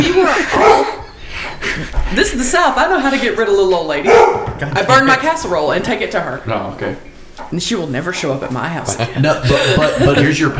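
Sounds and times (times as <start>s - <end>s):
laughter: 0.0s - 3.3s, 4.4s - 5.4s, 8.6s - 10.5s
dog giving high yippy barks: 0.3s - 1.2s, 4.0s - 4.6s
speech: 1.8s - 10.5s.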